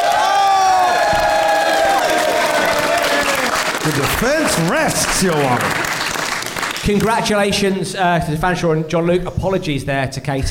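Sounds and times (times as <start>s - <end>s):
whoops and shouts: 0.0s - 3.6s
large audience cheering and applauding: 0.0s - 7.2s
speech: 3.9s - 5.8s, 6.9s - 10.4s.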